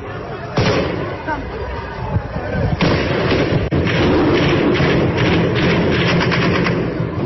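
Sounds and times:
loud clamorous crowd shouting at a street protest: 0.0 - 3.0
Taliban forces firing gunfire bursts during a street protest: 2.8 - 7.1.

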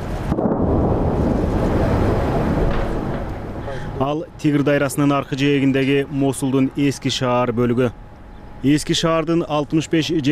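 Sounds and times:
artillery fire in an old city: 0.0 - 3.6
bomb explosions in an old city: 0.0 - 4.0
speech: 4.0 - 8.0, 8.6 - 10.3.

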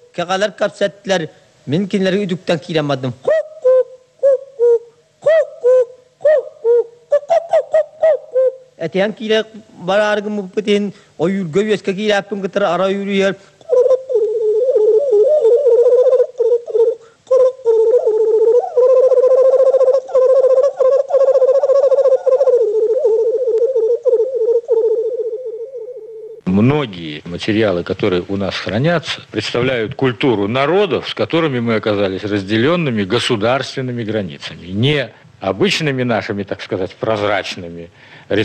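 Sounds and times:
speech: 0.2 - 3.3, 8.9 - 13.5, 26.6 - 38.4
man singing hunter's song imitating bird calls: 3.1 - 10.6, 12.9 - 26.5.

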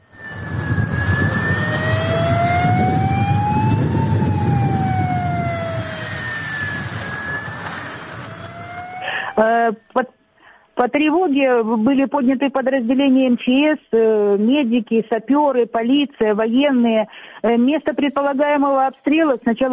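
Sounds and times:
city warning siren wailing: 0.0 - 9.6
speech: 9.7 - 10.2, 10.8 - 19.7.

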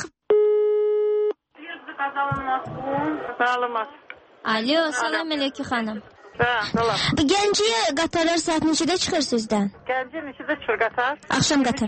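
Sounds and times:
telephone line tone after dialing a number: 0.3 - 1.3
speech: 2.0 - 11.8.

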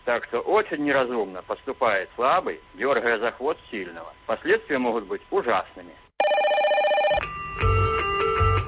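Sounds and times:
speech: 0.1 - 6.0, 7.1 - 7.8
electronic telephone ringing: 6.2 - 8.5.

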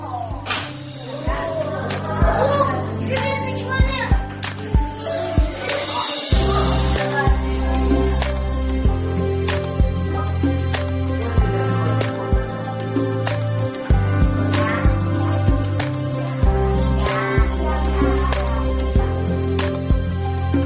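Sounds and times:
children chattering and calling out at a kindergarten: 0.0 - 20.5
sharp slaps or smacks: 0.4 - 0.8.

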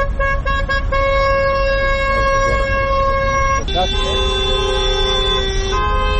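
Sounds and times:
street rumble in Podgorica: 0.0 - 6.1
taxi protest convoy car horns honking in Podgorica: 0.0 - 6.1.

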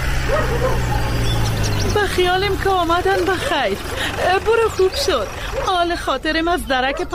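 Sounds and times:
dog barking in sharp yaps: 0.1 - 1.5, 4.8 - 5.8, 6.8 - 7.1
speech: 2.2 - 7.1.

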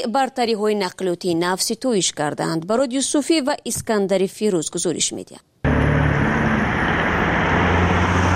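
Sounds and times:
speech: 0.0 - 5.6
Belarusian trolleybuses and Tajik Akia buses rumbling past in Dushanbe: 5.6 - 8.3
low engine hum: 5.6 - 8.3
road noise: 5.6 - 8.3.

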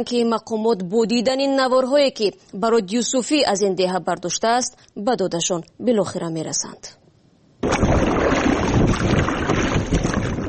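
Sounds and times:
speech: 0.0 - 7.0
rush of water from Kofarnihon river under inflatable rubber boat: 7.6 - 10.4
wind buffeting the microphone: 7.8 - 10.4.

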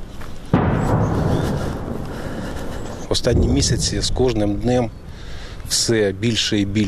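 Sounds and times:
distant heavy artillery fire: 0.5 - 5.2
speech: 3.1 - 5.0, 5.7 - 6.8.

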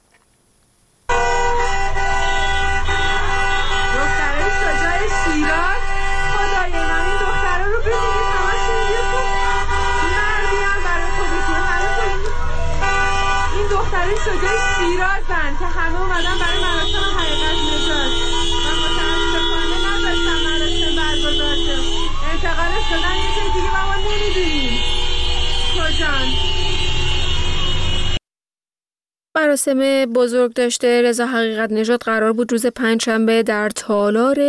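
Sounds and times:
street protest crowd chanting slogans: 1.1 - 3.9
crowd voices at a street protest: 1.1 - 5.6
car horns honking continuously in protest: 1.1 - 28.2
speech: 29.4 - 34.4.

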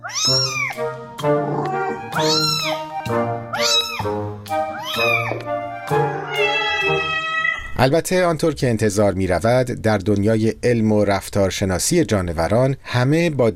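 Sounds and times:
cat meowing: 0.0 - 0.8, 1.4 - 2.9, 3.5 - 7.8
speech: 0.1 - 1.4, 7.8 - 13.5.

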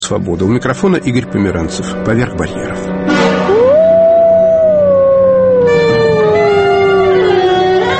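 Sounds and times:
speech: 0.1 - 3.4
wolves howling: 3.4 - 7.9.

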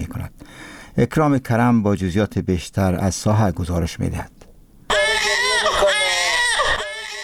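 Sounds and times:
speech: 1.0 - 4.4
newborn baby crying: 4.9 - 7.2.

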